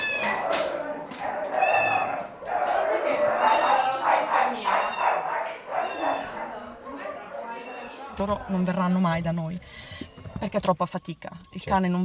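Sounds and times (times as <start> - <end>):
five young puppies yelping and whimpering: 0.0 - 2.4, 3.0 - 4.0, 4.6 - 6.6, 7.4 - 8.2
speech: 8.2 - 12.0.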